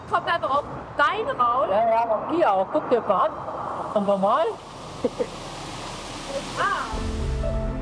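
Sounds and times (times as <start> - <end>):
speech: 0.1 - 5.4
ice-cold underground spring water rushing into a river with a strong current: 3.6 - 7.7.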